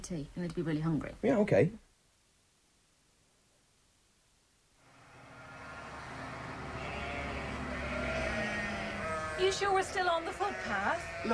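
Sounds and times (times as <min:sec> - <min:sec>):
speech: 0:00.0 - 0:01.8, 0:09.4 - 0:11.3
tractor engine rumbling: 0:04.8 - 0:11.3.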